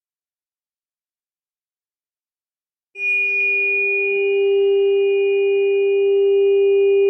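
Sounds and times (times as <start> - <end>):
steady 396 Hz ringing tone: 3.0 - 7.0.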